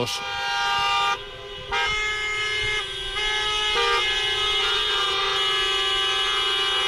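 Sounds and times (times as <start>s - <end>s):
speech: 0.0s - 0.4s
street traffic rumble: 0.0s - 6.8s
taxi car horns honking in a taxi drivers' protest at the EHU Ibaeta campus: 0.0s - 6.8s.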